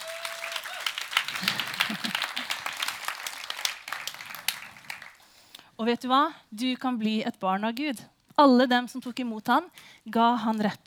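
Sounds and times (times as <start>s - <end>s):
audience applause: 0.0s - 5.2s
laughter: 0.8s - 2.8s
speech: 5.8s - 10.8s.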